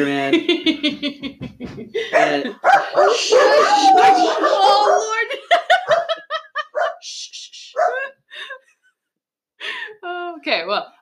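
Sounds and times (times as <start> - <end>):
speech: 0.0 - 4.8
laughter: 0.3 - 8.6
dog barking and yipping: 2.1 - 7.0, 7.8 - 8.1
dog whining: 2.6 - 5.2, 7.7 - 8.2.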